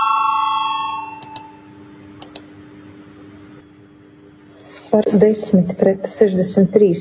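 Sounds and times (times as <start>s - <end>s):
parliamentary voting call bell ringing: 0.0s - 1.7s
soft clicks: 2.2s - 2.5s
speech: 4.9s - 7.0s.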